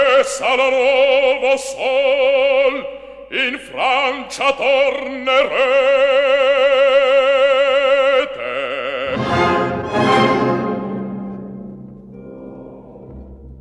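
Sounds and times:
angry operatic bass singing in Italian: 0.0s - 13.5s
speech: 0.3s - 7.0s
loud orchestra with dramatic swelling chords: 9.1s - 13.5s.

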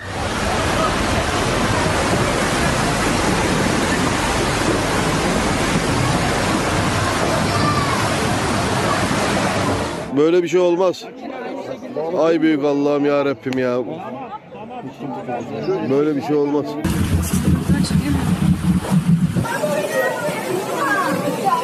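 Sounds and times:
tsunami floodwater rushing through streets: 0.0s - 10.2s, 16.8s - 21.6s
speech: 10.2s - 11.4s, 12.1s - 18.3s.

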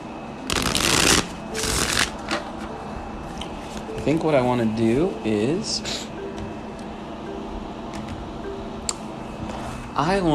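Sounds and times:
deck of tarot cards being shuffled: 0.5s - 2.2s
speech: 4.0s - 6.1s, 10.0s - 10.3s.

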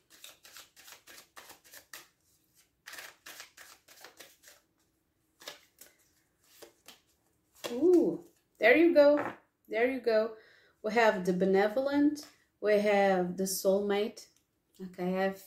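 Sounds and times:
tarot cards being drawn from a deck: 0.1s - 4.7s, 5.4s - 8.1s
speech: 7.7s - 15.4s.

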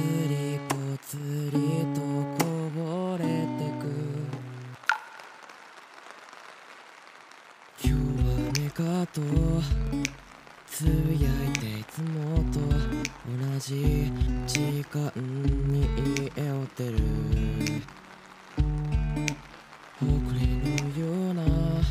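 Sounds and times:
recently released pop song with layered melodic instruments and a sung line: 0.0s - 5.2s, 7.7s - 21.8s.

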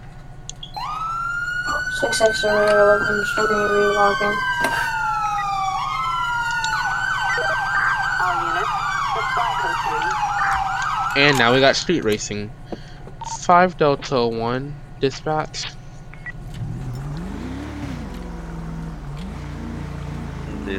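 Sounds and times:
police siren wailing and yelping in a video game: 0.6s - 12.3s, 16.6s - 20.7s
radio-style talking: 1.7s - 5.0s, 6.6s - 12.5s, 13.2s - 15.8s, 20.4s - 20.7s
speech: 2.0s - 5.0s, 11.2s - 12.8s, 13.5s - 15.8s.

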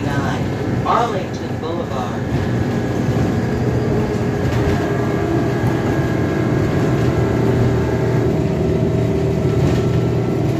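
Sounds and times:
city bus engine rumble heard from inside on Arlington Boulevard: 0.0s - 10.5s
city bus road roar: 0.0s - 10.5s.

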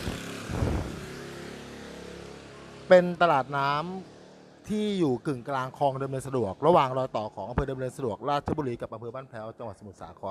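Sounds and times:
boat engine passing on a canal: 0.0s - 4.0s
speech: 2.9s - 4.1s, 4.7s - 10.3s.

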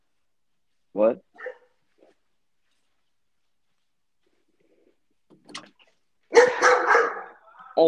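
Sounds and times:
speech: 1.0s - 1.4s
dog barking: 1.3s - 1.8s, 6.3s - 7.5s.

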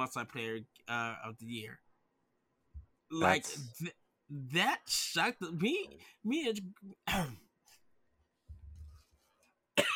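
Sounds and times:
speech: 0.0s - 1.8s, 3.1s - 7.4s
person coughing: 7.0s - 7.5s, 9.8s - 9.9s.

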